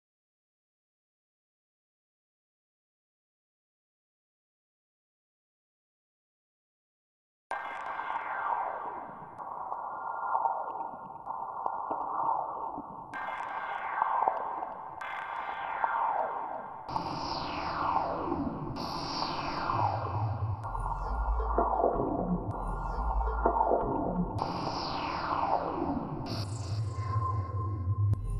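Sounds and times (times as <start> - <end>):
atmospheric sound effects: 7.5 - 28.2.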